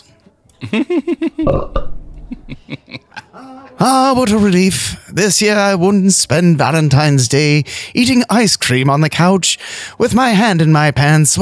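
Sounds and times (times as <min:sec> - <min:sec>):
speech: 0:00.6 - 0:01.8, 0:03.4 - 0:11.4
laughter: 0:00.6 - 0:04.4
person belching: 0:01.5 - 0:02.0.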